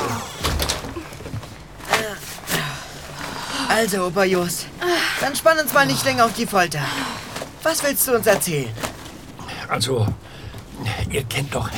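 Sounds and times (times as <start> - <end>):
door creak: 0.0 - 1.4
door pushed shut: 0.4 - 1.0
speech: 3.8 - 8.9, 9.7 - 10.2, 10.8 - 11.7.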